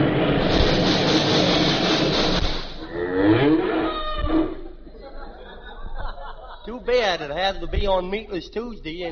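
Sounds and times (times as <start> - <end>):
loud rumbling noise: 0.0 - 3.7
cow on a road mooing: 2.8 - 4.7
laughter: 4.8 - 7.3
speech: 7.1 - 9.1.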